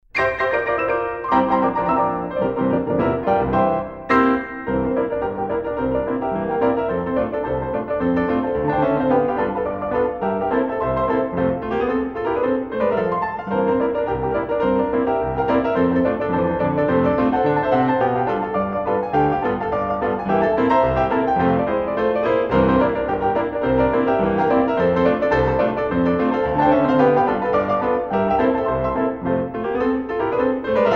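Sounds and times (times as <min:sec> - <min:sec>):
piano roll: 0:00.0 - 0:30.9.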